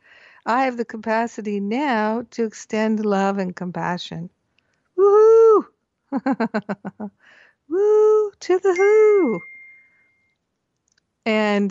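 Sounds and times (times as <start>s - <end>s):
speech: 0.4s - 4.4s, 5.0s - 9.5s, 11.2s - 11.7s
phone notification beep: 8.8s - 10.3s.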